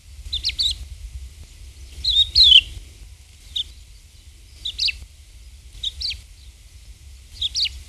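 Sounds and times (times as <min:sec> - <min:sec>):
low steady rumble: 0:00.0 - 0:07.8
Crested lark Galerida cristata whistled calls: 0:00.3 - 0:00.8, 0:01.9 - 0:02.8, 0:04.5 - 0:05.0, 0:05.8 - 0:06.2, 0:07.4 - 0:07.8.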